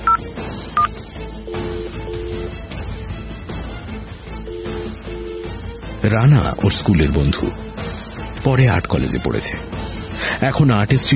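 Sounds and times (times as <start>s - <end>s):
touch-tone phone keypad beeps while dialing: 0.0s - 0.2s, 1.5s - 2.5s, 4.5s - 5.5s
speech: 6.0s - 7.7s, 8.4s - 11.1s.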